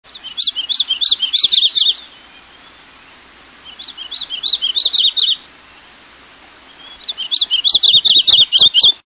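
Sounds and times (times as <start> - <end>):
Painted Redstart singing: 0.1 - 6.0, 6.6 - 9.0.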